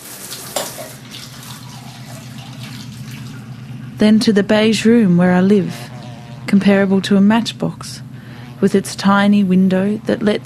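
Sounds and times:
water spray running in a tiled shower block: 0.0 - 4.0
speech: 4.0 - 5.9, 6.5 - 8.0, 8.6 - 10.4.

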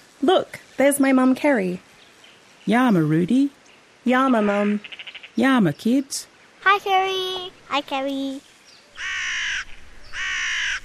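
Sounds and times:
speech: 0.2 - 1.9, 2.6 - 9.1
crow cawing: 4.8 - 5.4, 9.0 - 10.8.

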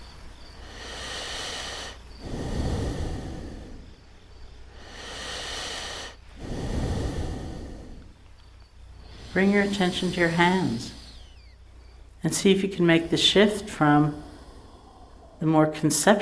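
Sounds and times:
slow deliberate breaths: 0.0 - 12.2, 13.3 - 15.4
speech: 9.4 - 11.0, 12.2 - 14.2, 15.4 - 16.1.

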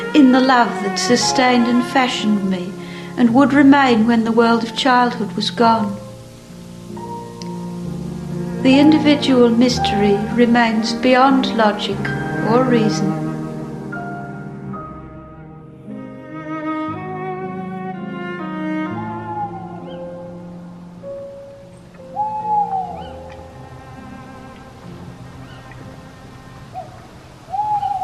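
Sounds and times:
speech: 0.2 - 6.0, 8.6 - 13.3
barn owl hooting: 18.9 - 20.7, 22.0 - 23.4, 26.7 - 28.0.

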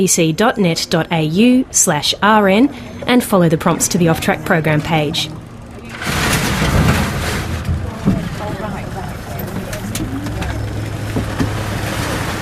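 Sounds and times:
speech: 0.0 - 5.4
indistinct voices: 0.0 - 11.4
oyster punt pushing up onto a beach, wash and rumble of water and hull: 0.0 - 12.4
oyster punt hull thump: 5.8 - 12.4.

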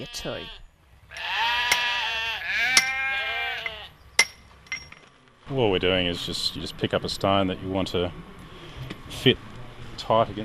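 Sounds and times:
speech: 0.0 - 1.4, 5.5 - 10.4
sheep bleating on a pastoral sheep station: 0.0 - 4.0
sharp clinking knocks: 2.7 - 5.1.

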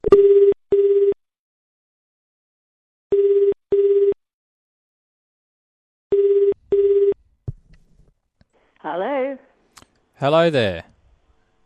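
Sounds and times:
phone line ringing tone through the earpiece: 0.0 - 1.2, 3.1 - 4.2, 6.1 - 7.2
speech: 8.8 - 9.5, 10.2 - 10.9.

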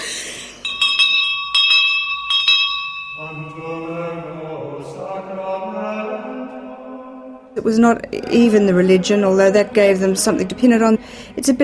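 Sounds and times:
school bell ringing: 0.5 - 4.4
speech: 7.6 - 11.6.

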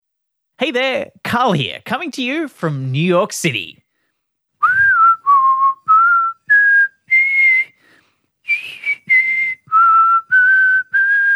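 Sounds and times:
speech: 0.6 - 3.8
person whistling a slow clear melody: 4.6 - 11.3.

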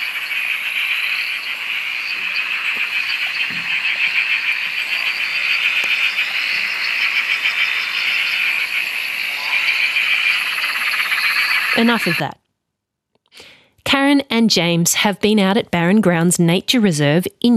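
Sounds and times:
chorus of many frogs calling at a dam: 0.0 - 12.3
speech: 11.8 - 12.4, 14.1 - 17.5.

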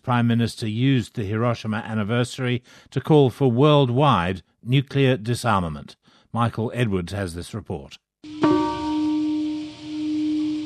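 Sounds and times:
speech: 0.1 - 8.4
single bell struck at a Hiroshima atomic bombing anniversary ceremony: 8.3 - 9.7.

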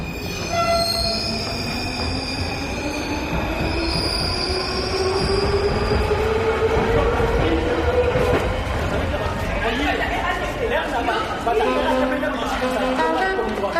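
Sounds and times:
metro train wheels squealing: 0.0 - 6.3
metro train arriving with loud steady rumble: 0.0 - 13.7.

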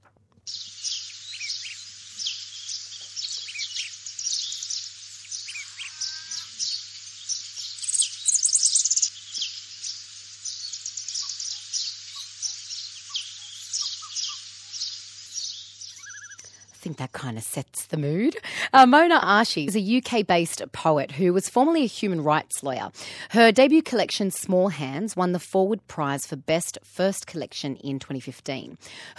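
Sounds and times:
dense chorus of birds chirping and trilling: 0.5 - 16.9
speech: 16.9 - 29.1.

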